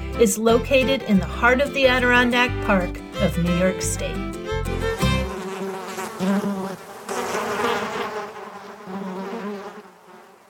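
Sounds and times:
speech: 0.2s - 4.4s
black flies buzzing in the Adirondack Mountains: 1.8s - 10.4s.

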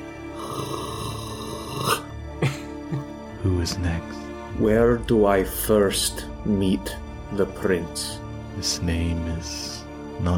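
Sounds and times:
voice imitating a growl: 0.4s - 2.1s
speech: 3.6s - 10.3s.

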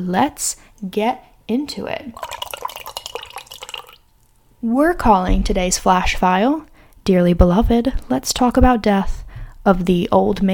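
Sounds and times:
speech: 0.0s - 2.7s, 4.6s - 10.5s
warm coffee pouring into a cup: 2.2s - 4.0s.

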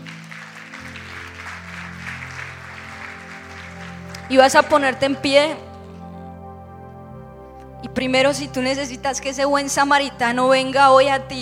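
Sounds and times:
large crowd applauding: 0.0s - 5.2s
low organ or keyboard chords: 0.0s - 11.4s
speech: 4.3s - 5.7s, 8.0s - 11.4s.

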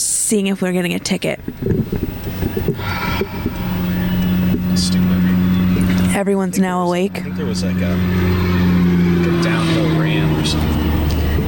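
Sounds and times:
speech: 0.3s - 2.2s, 4.8s - 5.4s, 6.1s - 8.7s
broadband traffic noise of cars on a nearby road: 1.2s - 11.4s
passing vehicle hiss: 2.2s - 6.2s, 6.9s - 11.4s.

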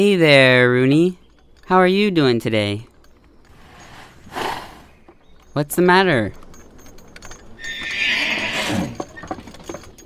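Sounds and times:
speech: 0.0s - 2.9s, 5.6s - 6.4s
soft hoof clops: 1.0s - 10.0s
muddy horse whinnying: 3.5s - 5.0s, 7.6s - 9.6s.

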